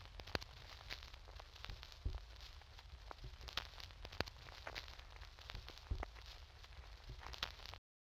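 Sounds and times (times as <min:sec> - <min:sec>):
1990s hip hop record noise: 0:00.0 - 0:07.8.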